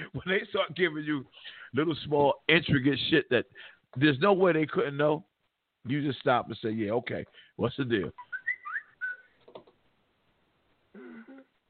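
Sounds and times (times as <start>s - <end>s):
speech: 0.2s - 8.3s
phone whistle-style text message alert: 8.2s - 9.3s.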